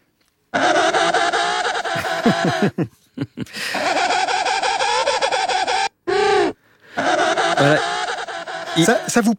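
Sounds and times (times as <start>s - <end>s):
penguin braying calls: 0.5s - 2.8s, 3.8s - 9.3s
laughter: 1.8s - 4.4s
speech: 2.4s - 4.1s, 7.6s - 7.9s, 8.8s - 9.3s.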